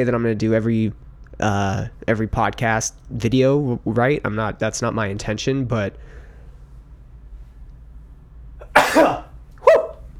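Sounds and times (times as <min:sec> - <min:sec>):
speech: 0:00.0 - 0:06.2
person with sinus trouble sneezing: 0:08.6 - 0:09.9.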